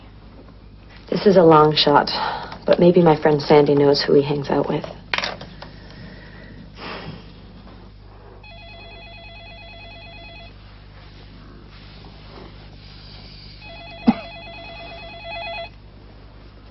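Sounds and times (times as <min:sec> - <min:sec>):
quiet hum: 0:00.0 - 0:16.6
speech: 0:01.1 - 0:05.0
faint breath: 0:05.4 - 0:08.4, 0:11.1 - 0:13.7
telephone ringing with warbling electronic tone: 0:08.4 - 0:10.6, 0:13.6 - 0:15.8.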